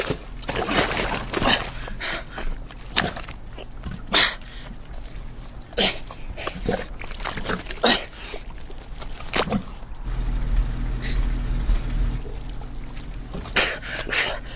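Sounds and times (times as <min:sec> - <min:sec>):
man wading and splashing through thick mud: 0:00.0 - 0:04.0, 0:04.8 - 0:10.0, 0:12.2 - 0:14.5
steady low rumble: 0:09.7 - 0:14.5.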